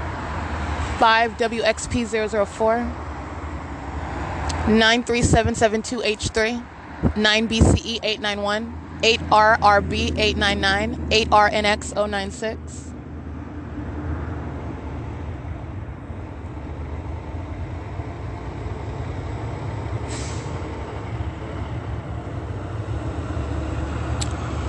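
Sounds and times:
large truck engine drone: 0:00.0 - 0:24.6
speech: 0:01.0 - 0:03.1, 0:04.7 - 0:12.9
truck air brakes hissing: 0:20.1 - 0:20.6.

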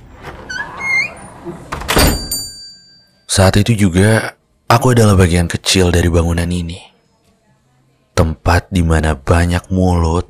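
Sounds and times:
door opening with a squeaky creak: 0:00.0 - 0:02.4
speech: 0:01.5 - 0:01.7, 0:03.4 - 0:06.9, 0:08.2 - 0:10.2.

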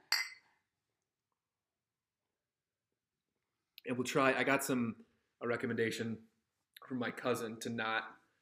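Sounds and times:
beer glasses clinking in a toast: 0:00.0 - 0:00.5
speech: 0:03.8 - 0:08.2.

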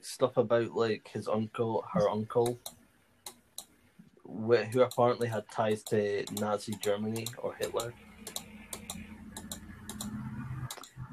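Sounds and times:
low steady hum: 0:00.0 - 0:02.7, 0:03.4 - 0:11.1
speech: 0:00.0 - 0:02.8, 0:04.3 - 0:09.0
sharp clicks: 0:02.4 - 0:03.7, 0:04.7 - 0:11.0.

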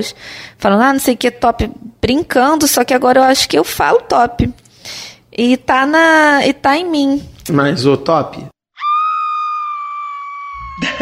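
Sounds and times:
speech: 0:00.0 - 0:08.5
playful high-pitched scream: 0:08.7 - 0:11.0
laughter: 0:10.7 - 0:11.0.

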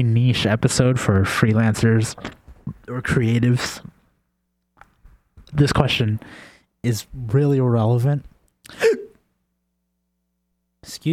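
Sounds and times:
speech: 0:00.0 - 0:03.9, 0:05.5 - 0:09.0, 0:10.8 - 0:11.1
hiccup: 0:08.7 - 0:09.2.

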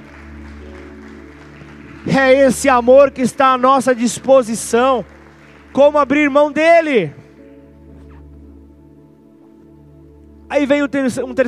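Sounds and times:
large crowd applauding: 0:00.0 - 0:07.4
speech: 0:02.0 - 0:07.2, 0:10.5 - 0:11.4.

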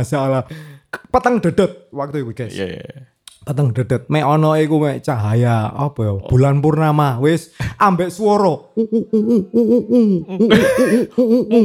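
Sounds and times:
speech: 0:00.0 - 0:11.6
voice imitating an owl with wavering hoots: 0:08.8 - 0:10.6.

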